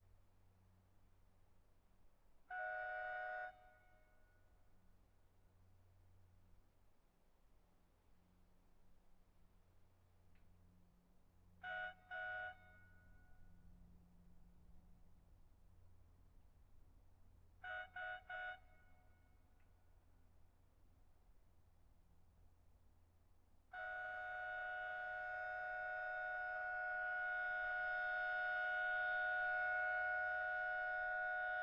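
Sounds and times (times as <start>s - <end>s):
distant Ford Crown Victoria car horn: 2.5s - 4.2s, 11.6s - 13.6s, 17.6s - 19.5s, 23.7s - 31.6s.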